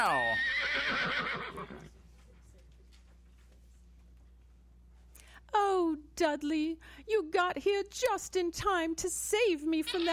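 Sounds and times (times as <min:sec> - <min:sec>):
speech: 0:00.0 - 0:01.8, 0:06.2 - 0:10.1
horse whinnying: 0:00.0 - 0:01.9.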